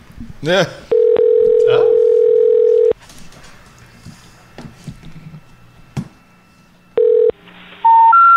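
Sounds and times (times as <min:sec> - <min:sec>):
telephone dial tone: 0:00.9 - 0:03.0, 0:07.0 - 0:07.4
rising electronic beeps: 0:07.8 - 0:08.3.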